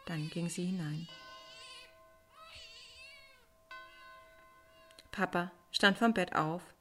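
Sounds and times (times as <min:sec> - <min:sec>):
newborn baby crying in a stable: 0:00.0 - 0:05.1
speech: 0:00.1 - 0:01.2, 0:05.2 - 0:06.8.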